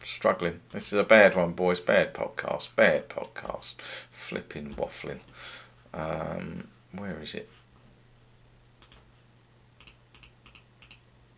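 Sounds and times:
speech: 0.0s - 7.6s
faint steady electrical hum: 0.0s - 11.3s
computer mouse clicks: 8.8s - 9.1s, 9.8s - 11.3s.

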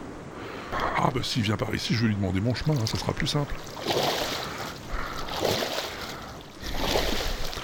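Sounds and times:
whale moving through water with rushing splashing surges: 0.0s - 7.6s
speech: 0.7s - 4.2s.

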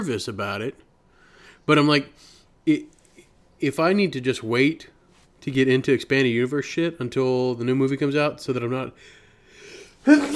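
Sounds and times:
speech: 0.0s - 0.9s, 1.6s - 3.0s, 3.6s - 9.2s, 10.0s - 10.3s
person sneezing: 9.7s - 10.3s.

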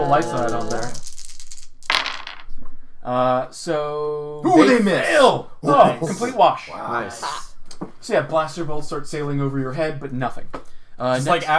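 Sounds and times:
speech: 0.0s - 1.1s, 3.0s - 11.5s
dice clattering and tumbling on a hard table: 0.1s - 2.5s.

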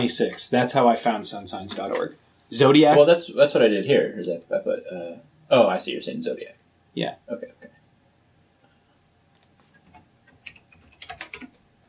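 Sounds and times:
speech: 0.0s - 7.7s
keystrokes on a computer keyboard typing a search term: 9.3s - 11.7s.

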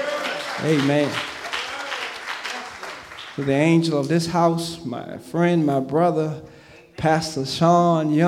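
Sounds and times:
large crowd clapping: 0.0s - 4.0s
speech: 0.6s - 1.3s, 3.4s - 8.2s.

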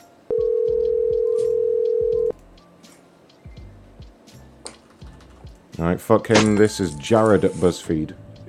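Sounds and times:
phone line ringback tone on an outgoing call: 0.3s - 2.3s
speech: 5.8s - 8.2s.

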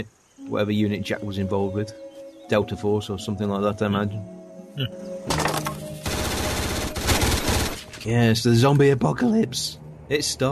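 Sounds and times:
speech: 0.0s - 5.8s, 8.0s - 10.5s
machine gun fire: 6.0s - 8.0s.

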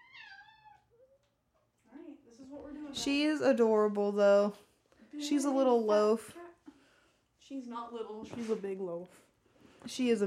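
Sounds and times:
cat meowing to be let in: 0.0s - 1.2s
speech: 2.4s - 6.4s, 7.5s - 10.2s.

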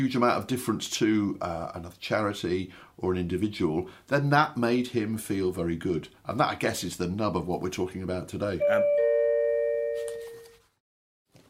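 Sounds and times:
speech: 0.0s - 9.0s
doorbell chiming: 8.6s - 10.6s.

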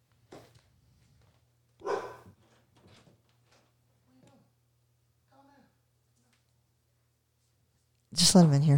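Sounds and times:
steady low electrical hum: 0.0s - 8.7s
dog giving softer whining yelps: 1.8s - 2.3s
dog giving a loud bark: 1.8s - 2.4s
speech: 8.2s - 8.7s.

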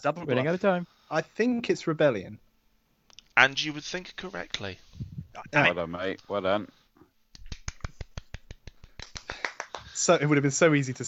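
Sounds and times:
speech: 0.0s - 2.4s, 3.4s - 6.8s, 10.0s - 11.0s
one person clapping crisp evenly spaced claps: 7.3s - 10.0s.

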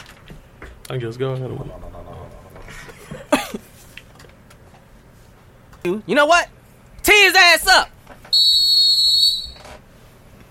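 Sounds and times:
speech: 0.9s - 2.0s, 5.8s - 7.9s
shrill whistle blast: 8.3s - 9.7s.

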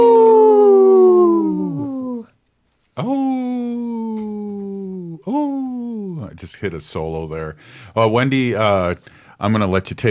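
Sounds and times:
person imitating a wolf howl: 0.0s - 2.3s, 3.0s - 6.2s
speech: 3.0s - 3.2s, 6.4s - 10.1s.

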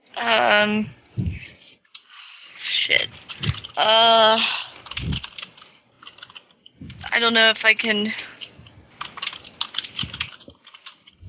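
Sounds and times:
speech: 0.2s - 1.6s, 2.9s - 4.6s, 7.2s - 8.3s
typing on computer keyboard: 3.1s - 4.0s, 4.8s - 6.6s, 7.8s - 11.2s.

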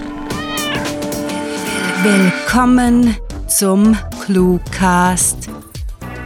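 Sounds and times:
cat meowing: 0.2s - 2.4s
speech: 2.0s - 5.6s.

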